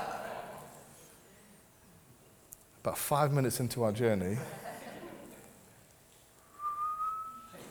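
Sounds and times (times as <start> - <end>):
quiet hiss: 0.0 - 7.6
speech: 2.8 - 4.7
toy whistle blast: 6.6 - 7.6.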